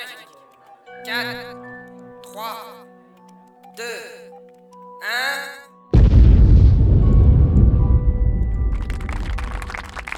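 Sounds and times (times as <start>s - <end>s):
speech: 1.1s - 1.7s, 3.8s - 4.2s
crackling debris or rattling noises: 6.0s - 10.1s
powerful explosion with deep rumbling roar: 6.0s - 10.1s.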